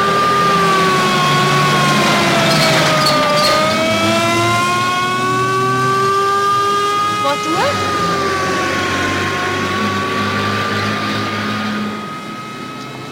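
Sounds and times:
fire engine siren wailing: 0.0s - 13.1s.

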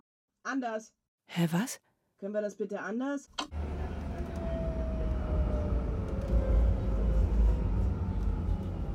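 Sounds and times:
speech: 0.5s - 3.7s
tram wheels and motor rumbling into a stop: 3.5s - 8.9s
faint descending tram whine: 3.6s - 8.9s.

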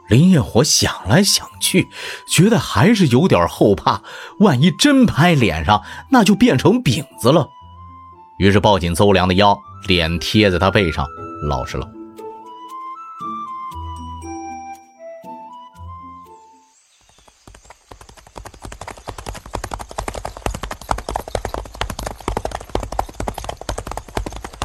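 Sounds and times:
speech: 0.1s - 7.6s, 8.4s - 12.0s
horses galloping on a road: 17.0s - 24.6s.

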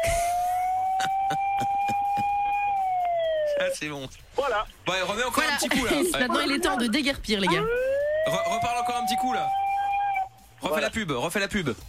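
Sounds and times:
steady siren wailing at a school: 0.0s - 3.9s, 6.4s - 10.5s
speech: 1.0s - 1.8s, 3.8s - 9.6s, 10.6s - 11.8s.

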